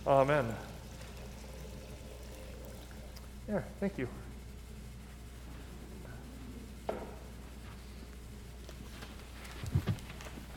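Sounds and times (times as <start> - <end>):
speech: 0.0 - 0.7, 3.5 - 4.3
soft stream of water pouring into a baptismal font during a baptism: 0.0 - 3.3.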